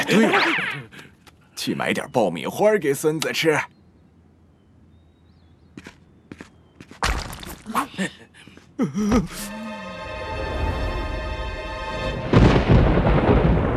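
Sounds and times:
speech: 0:00.1 - 0:00.8, 0:01.6 - 0:03.8, 0:08.8 - 0:09.6
steady droning tone: 0:09.4 - 0:12.6
thunder rumbling: 0:12.1 - 0:13.7.

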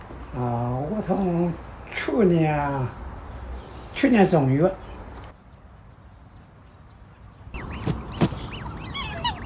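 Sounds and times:
speech: 0:00.4 - 0:03.0, 0:04.0 - 0:04.9
black swans kept and fed by a keeper honking and bugling: 0:07.6 - 0:09.4.

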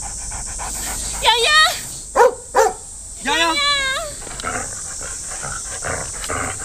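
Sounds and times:
people talking: 0:01.0 - 0:02.0, 0:03.2 - 0:04.3
dog barking: 0:02.1 - 0:02.9.

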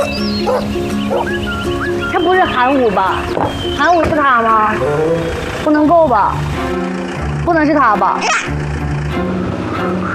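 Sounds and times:
large dog barking: 0:00.0 - 0:01.4
speech: 0:00.0 - 0:10.1.

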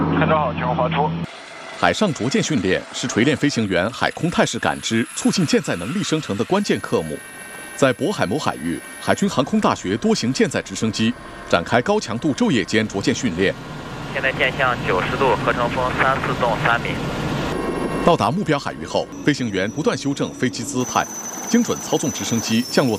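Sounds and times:
man speaking: 0:00.1 - 0:07.2, 0:07.8 - 0:13.6, 0:14.2 - 0:17.0, 0:18.1 - 0:22.9
shipborne helicopter engine and rotor drone: 0:00.8 - 0:22.9
high thin whine: 0:01.2 - 0:11.9, 0:12.7 - 0:22.9.

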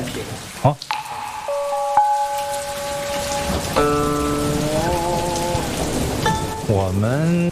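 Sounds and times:
heavy rain falling outside: 0:00.0 - 0:07.5
speech: 0:00.6 - 0:01.0, 0:06.9 - 0:07.5
sustained musical tones: 0:00.9 - 0:06.7.

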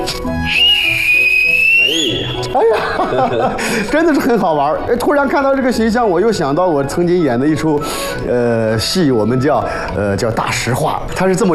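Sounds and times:
person whistling one long steady note: 0:00.2 - 0:02.6
laughter: 0:02.1 - 0:04.6
speech: 0:03.1 - 0:11.5.

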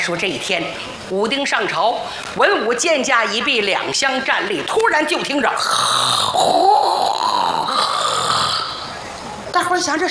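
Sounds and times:
speech: 0:00.0 - 0:07.1, 0:09.6 - 0:10.0
storyteller imitating snoring: 0:05.6 - 0:08.9.

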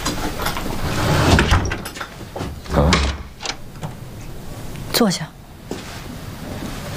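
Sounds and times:
door being pushed shut with a rough scraping rumble: 0:00.2 - 0:04.4
speech: 0:05.0 - 0:05.4.

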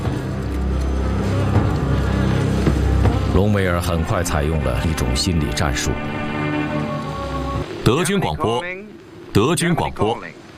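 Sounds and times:
flies buzzing: 0:00.0 - 0:08.1
speech: 0:03.4 - 0:06.3, 0:07.9 - 0:10.4.

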